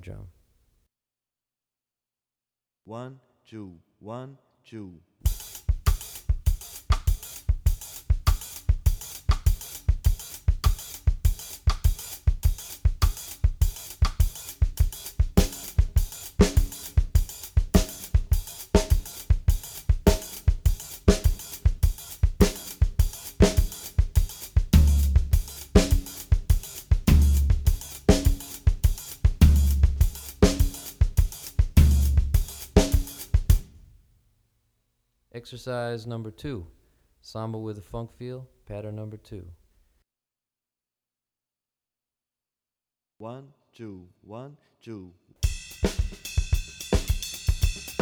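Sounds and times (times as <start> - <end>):
drumset playing samba with funk feel: 5.3 - 33.9, 45.4 - 47.9.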